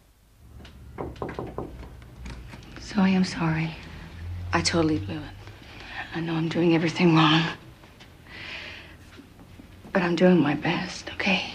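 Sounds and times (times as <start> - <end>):
low noise: 0.0 - 11.5
soft hesitant knocks on a bedroom door: 1.0 - 2.0
speech: 2.9 - 3.8, 4.5 - 5.4, 6.1 - 7.6, 10.0 - 11.5.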